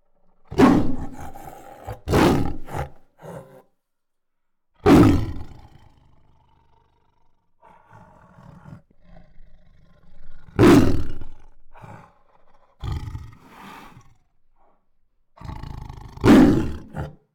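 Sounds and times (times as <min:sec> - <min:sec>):
female tiger protective roars: 0:00.4 - 0:03.7, 0:04.8 - 0:14.8, 0:15.4 - 0:17.2.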